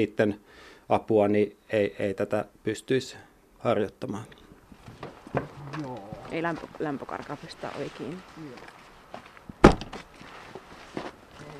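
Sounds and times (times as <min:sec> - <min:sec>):
speech: 0:00.0 - 0:04.4, 0:05.3 - 0:08.8
faint shuffling: 0:04.5 - 0:11.5
granary door thudding shut with a wooden bang: 0:09.6 - 0:10.0.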